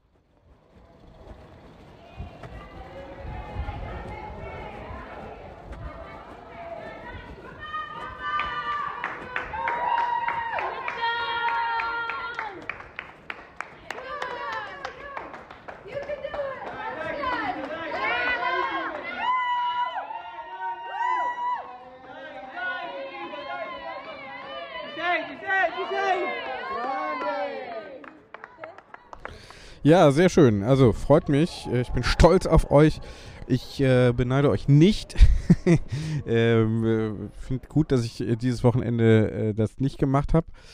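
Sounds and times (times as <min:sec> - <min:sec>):
roadside crowd cheering and shouting encouragement at riders: 0:01.8 - 0:12.8, 0:13.6 - 0:28.2, 0:30.9 - 0:34.7
roadside spectators clapping: 0:02.3 - 0:31.4
speech: 0:29.8 - 0:40.7
laughter: 0:34.9 - 0:36.8.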